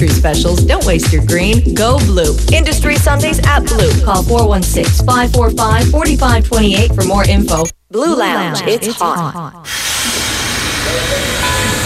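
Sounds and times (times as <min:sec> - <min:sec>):
speech: 0:00.0 - 0:10.2
rumble and hiss of rolling rail cars: 0:09.7 - 0:11.8.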